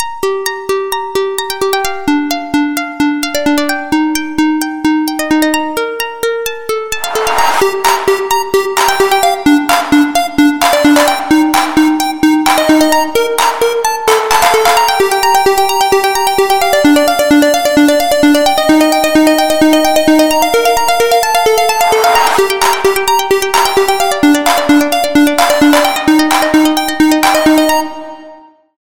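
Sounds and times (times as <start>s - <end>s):
electro ringtone melody: 0.2s - 28.5s.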